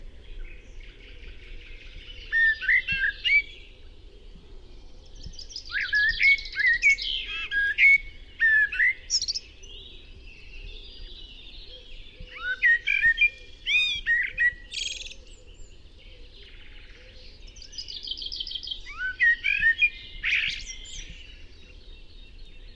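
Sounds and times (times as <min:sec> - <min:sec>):
Turdus merula: 0:00.0 - 0:22.7.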